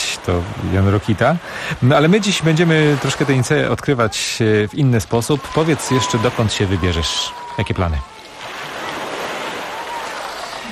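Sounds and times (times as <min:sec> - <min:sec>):
sea waves washing onto a beach by the azure sea at Nice: 0:00.0 - 0:10.7
speech: 0:00.2 - 0:08.1.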